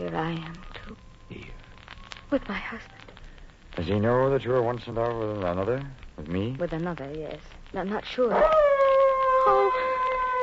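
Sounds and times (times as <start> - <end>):
speech: 0.0 - 1.4, 2.3 - 3.0, 3.8 - 8.7, 9.5 - 9.9
dogs howling: 8.3 - 10.4.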